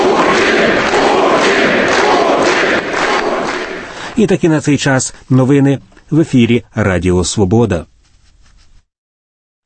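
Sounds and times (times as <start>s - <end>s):
large crowd in a congress hall in Moscow shouting and cheering in unison: 0.0s - 3.9s
speech: 4.2s - 7.9s.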